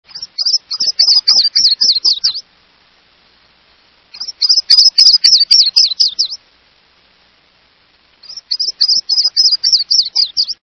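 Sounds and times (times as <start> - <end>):
Yellow throated Warbler: 0.1 - 2.5, 4.1 - 6.4, 8.2 - 10.6.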